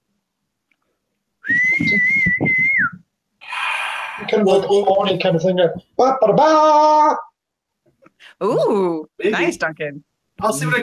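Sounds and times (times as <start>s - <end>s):
long steady high whistle: 1.4s - 3.0s
speech: 1.8s - 2.6s, 4.4s - 7.2s, 8.4s - 10.8s.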